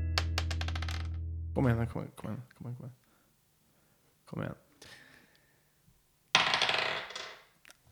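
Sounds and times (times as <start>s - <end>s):
die thrown in a game clattering across a hard tabletop: 0.2s - 1.1s, 6.3s - 7.5s
speech: 1.6s - 3.0s, 4.3s - 5.0s.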